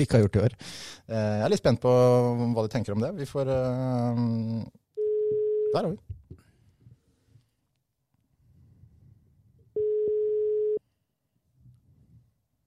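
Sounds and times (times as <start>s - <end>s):
speech: 0.0s - 4.8s, 5.7s - 6.2s
telephone ringback tone while waiting for a call to connect: 5.0s - 5.7s, 9.8s - 10.8s.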